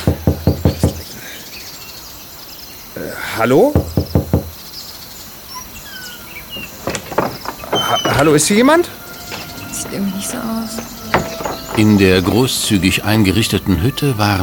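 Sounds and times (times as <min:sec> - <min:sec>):
knocking on a wooden door: 0:00.0 - 0:01.0, 0:03.8 - 0:04.6, 0:06.6 - 0:08.4, 0:10.7 - 0:12.0
faint outdoor ambience: 0:00.0 - 0:14.4
speech: 0:03.4 - 0:03.9, 0:08.2 - 0:09.0, 0:10.0 - 0:11.0, 0:11.8 - 0:14.4.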